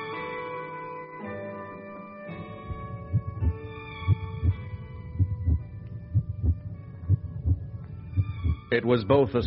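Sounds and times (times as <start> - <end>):
heartbeat: 2.6 - 9.4
speech: 8.8 - 9.4.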